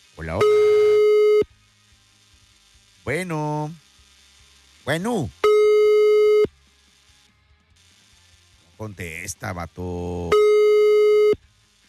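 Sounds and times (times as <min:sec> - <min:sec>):
speech: 0:00.2 - 0:00.7, 0:03.1 - 0:03.9, 0:04.8 - 0:05.5, 0:08.8 - 0:10.5
telephone busy signal: 0:00.3 - 0:01.4, 0:05.4 - 0:06.5, 0:10.3 - 0:11.4.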